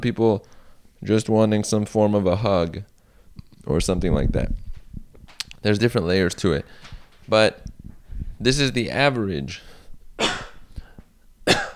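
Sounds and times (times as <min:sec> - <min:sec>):
speech: 0:00.0 - 0:02.9, 0:03.6 - 0:04.6, 0:05.6 - 0:07.7, 0:08.4 - 0:10.5
sharp coughs: 0:10.2 - 0:11.7.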